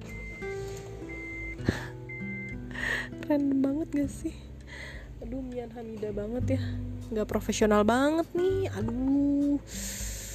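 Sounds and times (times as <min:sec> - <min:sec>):
car engine starting and idling: 0:00.0 - 0:06.7
speech: 0:03.3 - 0:10.0.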